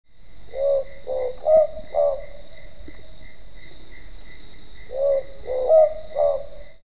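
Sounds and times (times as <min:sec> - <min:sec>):
Ninox boobook owl: 0:00.5 - 0:02.5, 0:04.9 - 0:06.8.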